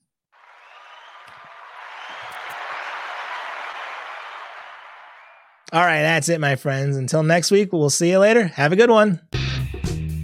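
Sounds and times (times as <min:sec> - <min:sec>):
canned applause of a sizable crowd from a soundboard button: 0:00.4 - 0:06.0
speech: 0:05.7 - 0:09.4.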